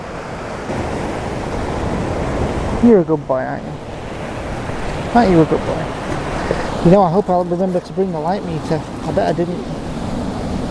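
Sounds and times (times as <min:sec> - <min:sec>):
ocean waves crashing onto the shore: 0:00.0 - 0:10.6
wind rumble: 0:00.0 - 0:10.6
speech: 0:02.8 - 0:03.9, 0:05.1 - 0:09.8.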